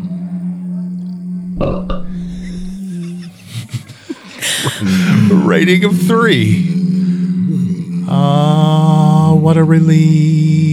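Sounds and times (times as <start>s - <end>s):
long low droning belch: 1.5s - 2.9s
laughter: 2.0s - 7.1s
speech: 4.8s - 6.8s, 8.1s - 8.8s, 9.4s - 10.7s.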